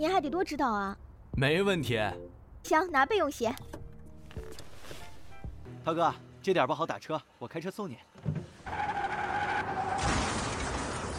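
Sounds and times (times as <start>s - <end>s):
speech: 0.0s - 3.8s, 5.8s - 8.9s
car tires squealing skidding on a wet road: 8.6s - 11.1s.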